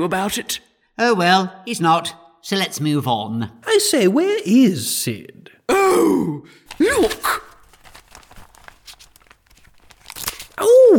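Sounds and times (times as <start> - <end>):
speech: 0.0 - 7.4
paper crinkling as it is pinned onto clothing: 6.7 - 10.9.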